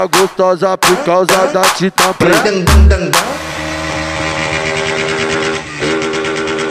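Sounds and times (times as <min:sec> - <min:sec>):
speech: 0:00.0 - 0:03.4
motorcycle engines revving hard: 0:02.7 - 0:06.7.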